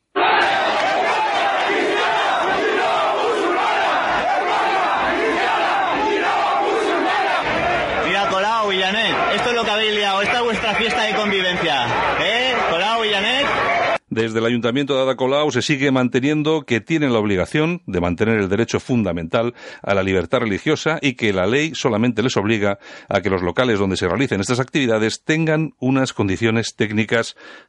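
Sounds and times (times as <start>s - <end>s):
street protest crowd shouting: 0.0s - 14.0s
individual raised shouts and chant-like cries: 0.1s - 8.1s
speech: 14.2s - 27.6s.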